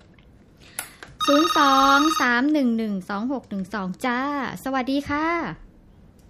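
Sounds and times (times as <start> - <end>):
telephone ringing on a call-in line: 1.2 - 2.4
speech: 1.3 - 5.6.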